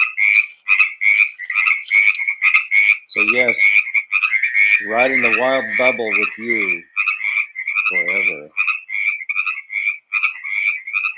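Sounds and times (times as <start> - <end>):
chorus of frogs croaking played through a small speaker: 0.0 - 11.1
speech: 3.3 - 3.7, 4.8 - 6.9, 7.9 - 8.6.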